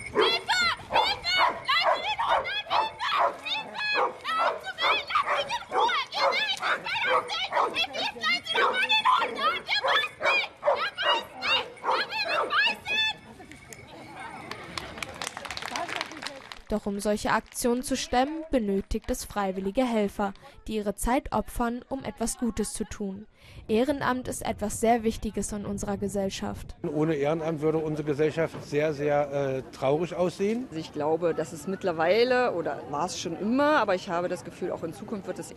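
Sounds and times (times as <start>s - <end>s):
search dog barking loudly: 0.1s - 12.6s
speech: 16.9s - 35.5s.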